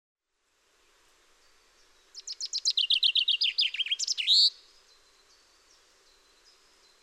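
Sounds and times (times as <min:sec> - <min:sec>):
common chaffinch singing, Fringilla coelebs: 0:01.4 - 0:07.0.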